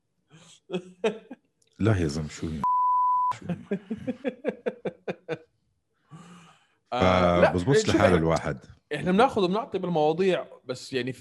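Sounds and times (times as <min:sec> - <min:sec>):
speech: 0:00.7 - 0:01.2, 0:01.8 - 0:02.7, 0:03.4 - 0:04.7, 0:06.9 - 0:11.2
rhythmic laughing bursts: 0:00.7 - 0:01.4, 0:03.3 - 0:05.5
censor bleep tone over speech: 0:02.6 - 0:03.3
short breathy exhale: 0:06.1 - 0:06.8.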